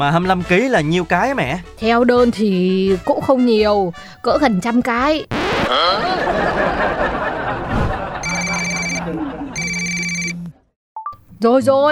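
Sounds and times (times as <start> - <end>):
speech: 0.0 - 7.4, 11.4 - 11.8
laughter: 5.7 - 9.6
short telephone line beep: 8.2 - 9.0, 9.6 - 10.3
telephone at a rice cake business ringing with electronic trill: 8.2 - 9.0, 9.6 - 10.3.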